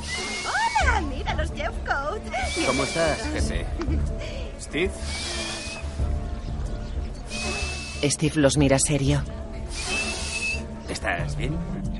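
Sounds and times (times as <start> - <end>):
whistling nasal breathing through dry mucus: 0.0 - 1.0, 4.9 - 6.1, 7.2 - 8.2, 9.6 - 10.9
speech: 1.4 - 5.3, 8.0 - 9.8, 11.1 - 11.8.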